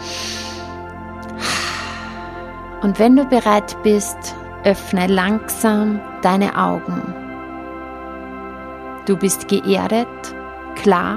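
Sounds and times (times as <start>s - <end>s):
deep breath in during a guided meditation: 0.0s - 2.7s
sustained musical drone: 0.0s - 11.1s
speech: 2.8s - 7.2s, 9.1s - 11.1s.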